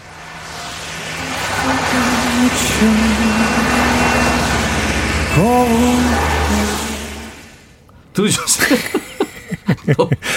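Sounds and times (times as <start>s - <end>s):
car rolling past with engine and road noise: 0.0s - 7.8s
speech: 2.5s - 3.6s, 5.4s - 6.8s, 8.2s - 9.0s, 9.8s - 10.3s
laughter: 8.4s - 10.3s.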